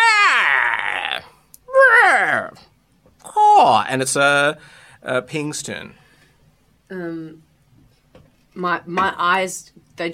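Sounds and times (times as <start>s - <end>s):
voice imitating the screech of an owl struck by a rapier: 0.0s - 2.6s
speech: 3.6s - 6.0s, 6.9s - 7.5s, 8.6s - 10.1s.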